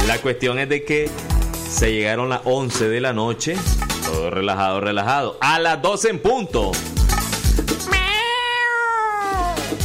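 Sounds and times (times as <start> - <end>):
speech: 0.1 - 7.0
cat wailing meow: 7.8 - 9.7.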